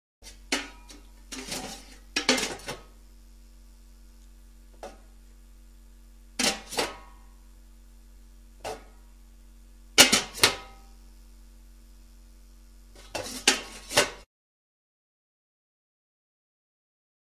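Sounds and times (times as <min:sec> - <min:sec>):
metal cooking pot clanking and scraping: 0:00.3 - 0:02.9, 0:06.4 - 0:07.0, 0:13.0 - 0:14.2.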